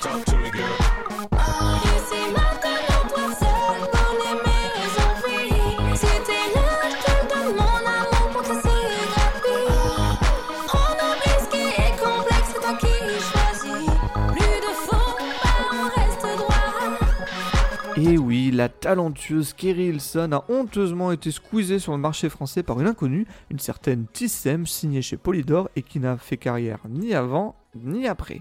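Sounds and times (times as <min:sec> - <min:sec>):
speech: 0:00.0 - 0:00.8, 0:18.1 - 0:28.3
French cover of a pop song with dance beat and synths: 0:00.0 - 0:18.3
person singing a melody: 0:00.0 - 0:18.3.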